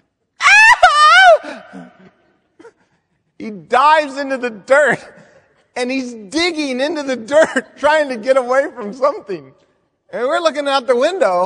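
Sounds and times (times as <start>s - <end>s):
voice imitating a hunting partner's shrill high-pitched scream: 0.4s - 1.9s
speech: 3.4s - 5.2s, 5.8s - 11.4s.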